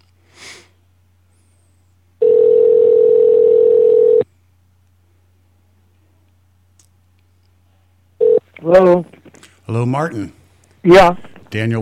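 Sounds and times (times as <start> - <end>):
faint low hum: 0.0 - 11.8
brief sniff: 0.2 - 0.8
phone line ringback tone during outgoing call: 2.2 - 4.2, 8.2 - 8.4
speech: 8.7 - 9.1, 9.7 - 11.8.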